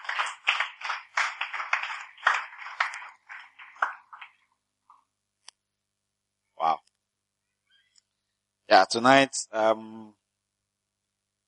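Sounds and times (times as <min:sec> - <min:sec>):
audience applauding: 0:00.0 - 0:04.4
speech: 0:08.7 - 0:10.1.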